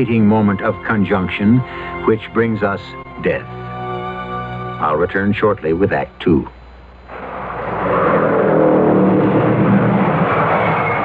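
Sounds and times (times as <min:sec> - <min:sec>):
speech: 0:00.0 - 0:03.7, 0:04.8 - 0:06.6
car engine drone: 0:03.1 - 0:11.0
car road rumble: 0:07.1 - 0:11.0.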